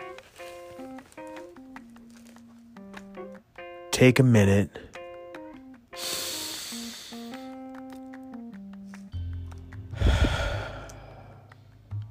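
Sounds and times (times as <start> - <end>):
speech: 4.0 - 4.8
deep breaths: 6.0 - 7.6, 9.9 - 11.7.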